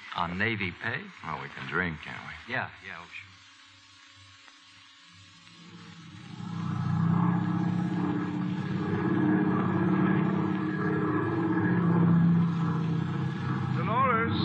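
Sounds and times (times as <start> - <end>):
speech: 0.2 - 3.3
propeller airplane engine droning: 5.8 - 14.4.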